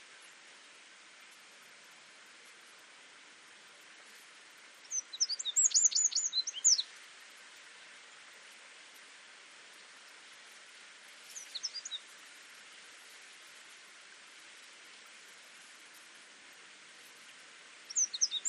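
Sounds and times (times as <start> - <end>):
quiet hiss: 0.0 - 18.4
Eurasian wren song in short bursts: 4.8 - 6.9, 11.2 - 12.1, 17.8 - 18.4.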